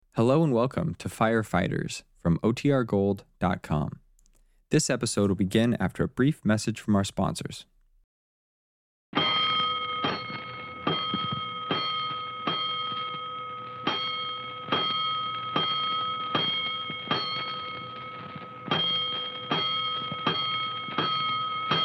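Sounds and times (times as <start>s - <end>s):
speech: 0.2s - 4.0s, 4.7s - 7.7s
fire station alarm bell ringing for a five-alarm fire: 9.2s - 21.8s.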